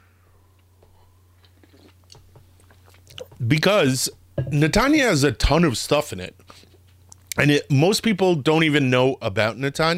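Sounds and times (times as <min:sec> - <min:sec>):
low steady hum: 0:00.0 - 0:09.9
person sipping coffee: 0:00.8 - 0:03.4
speech: 0:03.4 - 0:06.7, 0:07.4 - 0:09.9.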